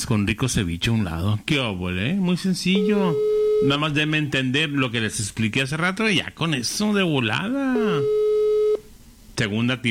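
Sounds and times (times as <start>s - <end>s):
speech: 0.1s - 8.2s, 9.4s - 9.9s
telephone ringback tone on an outgoing call: 2.7s - 4.0s, 7.8s - 8.8s.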